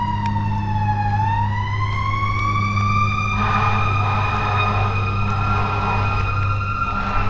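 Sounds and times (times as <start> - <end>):
fire truck siren wailing: 0.0 - 7.2
low rumble: 0.0 - 7.2.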